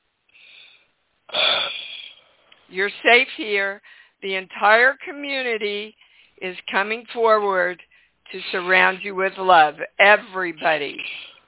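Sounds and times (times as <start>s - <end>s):
person taking guided breaths: 0.3s - 2.6s, 3.8s - 4.2s, 6.0s - 6.4s
speech: 2.7s - 11.2s.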